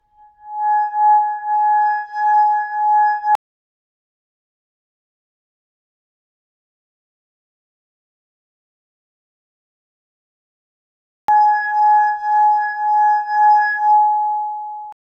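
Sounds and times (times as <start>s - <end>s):
tall narrow crystal glass musical tone from rubbing: 0.2s - 3.4s, 11.3s - 14.7s.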